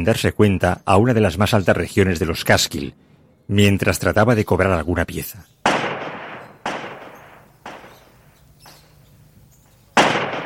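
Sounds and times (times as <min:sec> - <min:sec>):
speech: 0:00.0 - 0:05.6
gunshots echoing in mountains: 0:05.6 - 0:08.8, 0:09.9 - 0:10.4.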